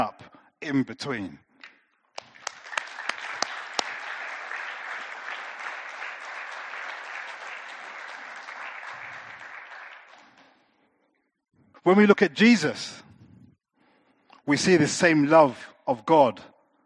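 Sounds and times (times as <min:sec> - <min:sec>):
speech: 0:00.0 - 0:01.4, 0:11.8 - 0:13.0, 0:14.5 - 0:16.5
audience applauding: 0:02.2 - 0:10.7.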